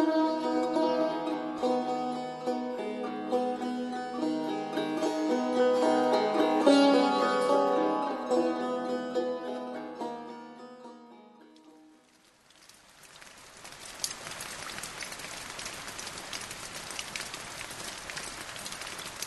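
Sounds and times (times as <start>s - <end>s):
soft music: 0.0s - 12.0s
heavy rain pattering on pavement: 12.0s - 19.2s.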